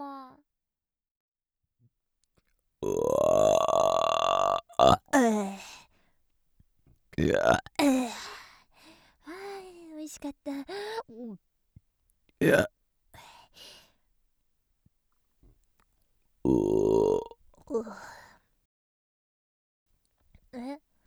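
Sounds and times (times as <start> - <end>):
speech: 2.8 - 3.2
loud drawn-out burp after a meal: 2.8 - 5.5, 7.2 - 8.1, 12.4 - 12.7, 16.5 - 17.4
quieter breathy sounds: 2.8 - 5.8, 7.2 - 9.1, 12.4 - 13.8, 16.5 - 18.4
short voiced bursts: 4.8 - 5.7, 7.2 - 8.2, 12.4 - 12.7.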